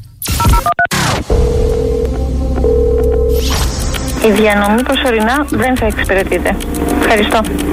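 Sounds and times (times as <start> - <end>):
speech: 0.6 - 1.0, 4.2 - 7.7
telephone ringing tone: 1.3 - 3.6.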